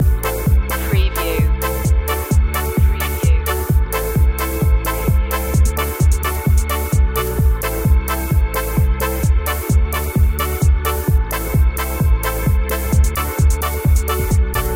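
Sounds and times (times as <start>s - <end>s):
melodic electronica energy ska loop: 0.0s - 14.7s.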